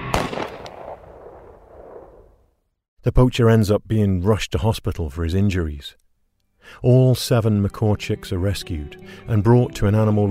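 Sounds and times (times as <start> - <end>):
gunshots fired during a chase through thick jungle: 0.0 - 2.4
low rumbling decay of gunshots: 0.0 - 2.5
speech: 3.0 - 6.0, 6.6 - 10.2.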